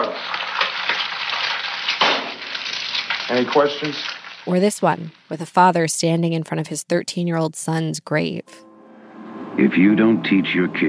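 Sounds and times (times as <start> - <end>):
egg sizzling in a hot frying pan: 0.0 - 5.8
speech: 3.3 - 8.7, 9.6 - 10.8.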